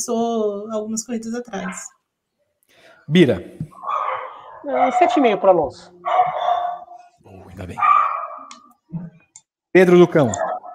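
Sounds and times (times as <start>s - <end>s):
speech: 0.0s - 2.0s, 3.1s - 3.9s, 4.6s - 6.4s, 7.6s - 8.0s, 9.8s - 10.4s
Yorkshire terrier and Schnauzer barking: 3.8s - 8.7s, 10.2s - 10.7s.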